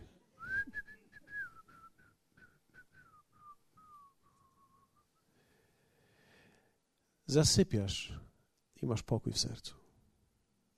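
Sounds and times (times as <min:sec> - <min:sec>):
person whistling a light cheerful melody: 0:00.4 - 0:05.2
speech: 0:07.3 - 0:09.8.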